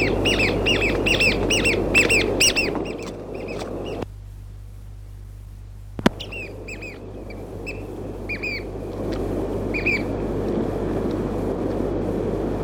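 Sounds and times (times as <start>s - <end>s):
Chatham Island oystercatcher piping: 0.0s - 4.0s, 6.0s - 10.6s
sharp click: 6.0s - 6.3s
steady rushing noise: 7.4s - 12.6s.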